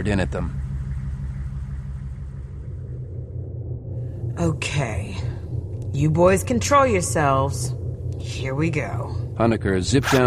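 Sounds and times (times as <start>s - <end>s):
speech: 0.0s - 0.6s, 4.4s - 5.3s, 5.9s - 10.2s
heavy truck engine idling: 0.0s - 3.4s.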